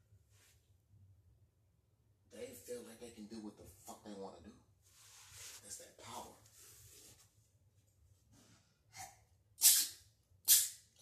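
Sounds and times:
speech: 2.4 - 4.7, 5.6 - 6.5
sneeze: 9.0 - 10.9.

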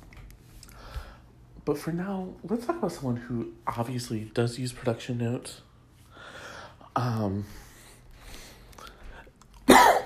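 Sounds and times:
quiet breathing: 0.6 - 1.5, 5.8 - 9.4
speech: 1.6 - 5.7, 7.0 - 7.6
sharp loud cough: 9.7 - 10.0.

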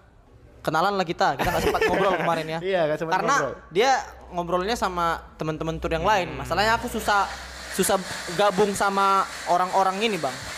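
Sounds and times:
speech: 0.6 - 10.5
laughter: 1.4 - 2.5
kitchen blender motor whirring: 7.1 - 10.5.

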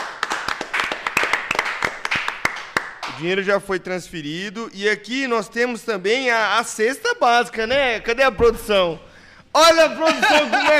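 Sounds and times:
group applauding: 0.0 - 3.3
speech: 3.2 - 10.7
laughter: 9.9 - 10.7.

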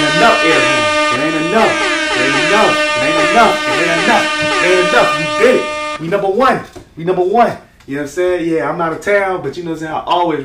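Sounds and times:
brassy air horn blasts: 0.0 - 6.0
speech: 1.6 - 1.9, 2.5 - 10.4.

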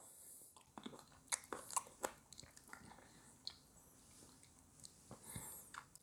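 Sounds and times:
wet chewing of grapes: 0.6 - 6.0.

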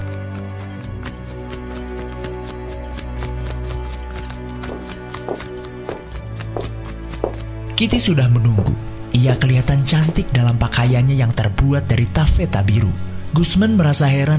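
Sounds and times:
horse hooves clip-clopping pulling a carriage: 0.0 - 10.8
speech: 7.8 - 14.3.

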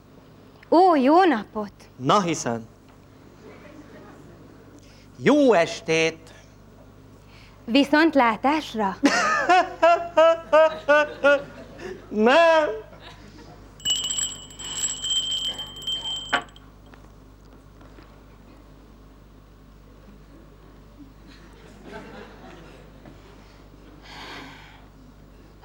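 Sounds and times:
speech: 0.7 - 2.7, 5.2 - 6.3, 7.7 - 9.3, 10.2 - 12.9
laughter: 9.0 - 13.7, 21.3 - 23.0
bell ringing: 13.8 - 16.6.

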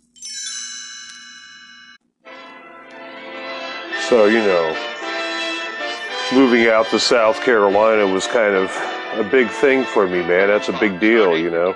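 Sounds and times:
chimes ringing: 0.0 - 2.0, 4.0 - 8.1
speech: 4.1 - 4.9, 6.3 - 11.7.

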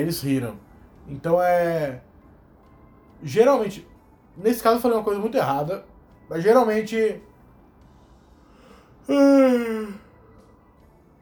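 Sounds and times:
speech: 0.0 - 2.1, 3.2 - 7.3, 9.1 - 10.0
drawn-out voiced yawn: 9.0 - 10.2.

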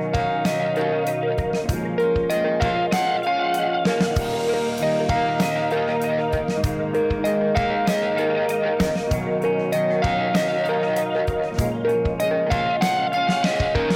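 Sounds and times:
electric guitar through a modulated delay pedal: 0.0 - 13.9.

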